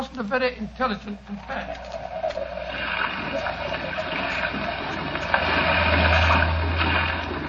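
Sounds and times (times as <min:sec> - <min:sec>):
speech: 0:00.2 - 0:02.0, 0:03.2 - 0:04.4
small fishing boat engine droning: 0:00.7 - 0:07.4
rough sea churning water and spray: 0:01.5 - 0:07.4.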